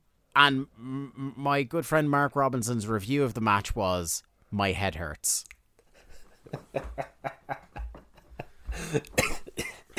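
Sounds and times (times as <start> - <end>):
speech: 0.4 - 5.6, 6.4 - 7.6, 8.8 - 9.3
laughter: 6.0 - 9.2
person coughing harshly: 8.7 - 9.9.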